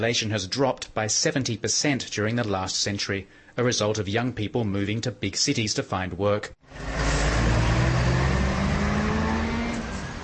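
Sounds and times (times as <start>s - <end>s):
speech: 0.0s - 6.9s
broadband road rumble: 6.6s - 10.2s
car engine humming inside a moving vehicle: 6.7s - 10.2s.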